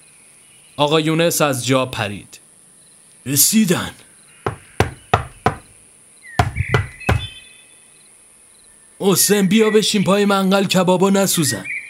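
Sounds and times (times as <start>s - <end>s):
speech: 0.8s - 2.4s, 3.2s - 4.1s, 9.1s - 11.8s
firm knocking on a door: 4.5s - 5.7s, 6.4s - 7.4s.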